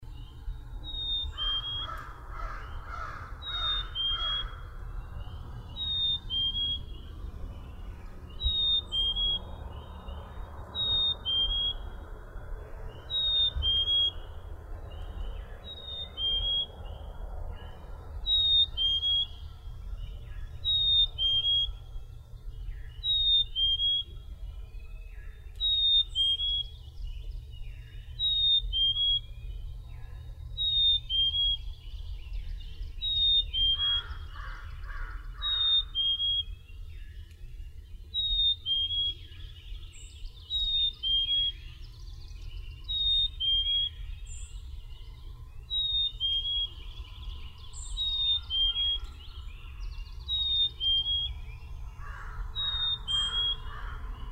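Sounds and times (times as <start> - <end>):
Black-capped Chickadee calling: 0.8 - 7.2, 8.3 - 10.1, 10.7 - 12.0, 13.0 - 16.8, 18.2 - 21.9, 22.9 - 24.2, 25.3 - 26.8, 28.1 - 29.3, 30.6 - 31.7, 33.0 - 36.7, 38.1 - 41.9, 42.7 - 45.0, 45.7 - 54.2.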